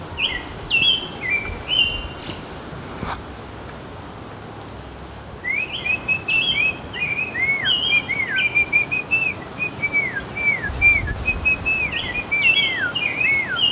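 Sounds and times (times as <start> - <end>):
low rumble of city background noise: 0.0 - 13.6
songbird whistling in a city: 0.2 - 2.4, 5.4 - 13.6.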